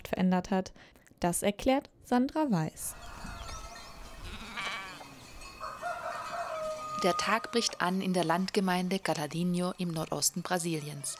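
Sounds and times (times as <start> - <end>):
speech: 0.1 - 3.1, 7.0 - 11.1
goats bleating as they leave corral: 4.2 - 5.2
rooster-like call: 4.2 - 7.8.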